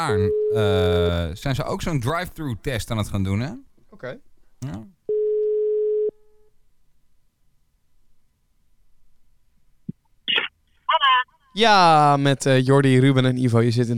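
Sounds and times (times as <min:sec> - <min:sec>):
voice answering a phone call: 0:00.0 - 0:01.3, 0:10.3 - 0:11.7
speech: 0:00.0 - 0:05.0, 0:11.6 - 0:13.9
telephone ringing tone while placing a call: 0:05.1 - 0:06.1.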